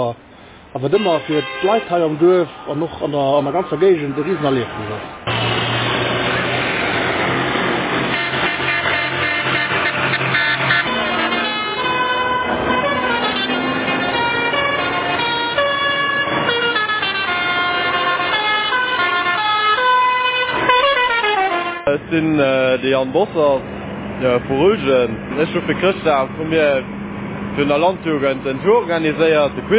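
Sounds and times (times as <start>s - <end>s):
speech: 0.0s - 5.3s, 22.1s - 29.7s
parade of tractors rumbling past: 0.0s - 29.7s
tractor horns honking: 0.8s - 23.0s.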